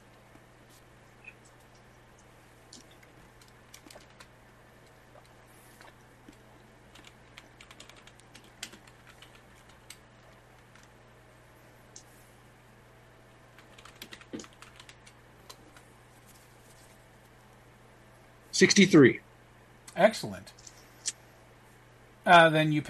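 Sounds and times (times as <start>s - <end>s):
steady low hum: 0.0s - 22.2s
faint typing on a computer keyboard: 2.7s - 4.3s, 6.9s - 10.9s, 13.6s - 15.8s
speech: 18.6s - 19.2s, 20.0s - 20.6s, 22.3s - 22.8s.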